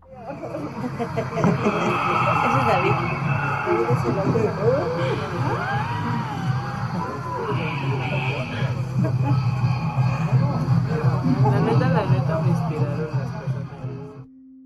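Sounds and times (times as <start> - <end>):
many overlapping voices chattering: 0.0 - 14.2
laughter: 0.2 - 14.0
speech: 1.0 - 6.4
raised calls: 1.2 - 11.6.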